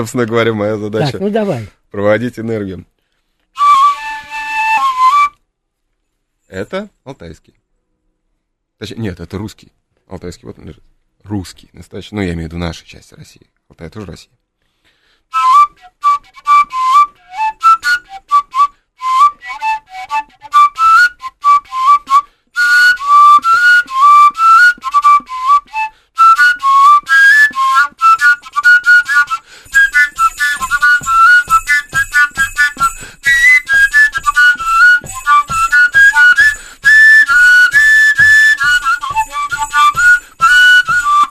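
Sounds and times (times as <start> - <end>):
speech: 0.0 - 2.9, 6.5 - 7.6, 8.8 - 14.4
bright whistle-like melody: 3.6 - 5.5, 15.3 - 41.2
small bells jingling: 29.3 - 41.2.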